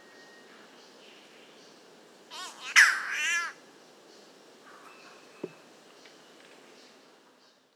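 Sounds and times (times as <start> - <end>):
Spotted catbird Ailuroedus maculosus rough nasal cat-like wailing call: 2.3 - 3.6.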